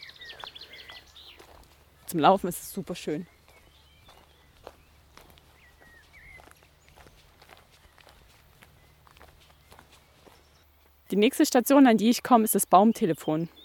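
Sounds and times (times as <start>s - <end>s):
faint bird chirps: 0.0s - 1.6s, 3.2s - 11.2s
footsteps on soft wood-chip forest path: 0.0s - 11.0s
speech: 2.1s - 3.4s, 11.2s - 13.6s.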